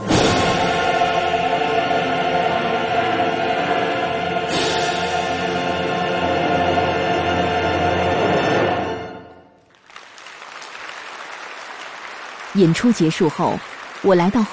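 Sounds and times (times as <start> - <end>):
orchestral overture: 0.0 - 12.5
concert audience applause: 9.6 - 14.5
speech: 12.6 - 14.5.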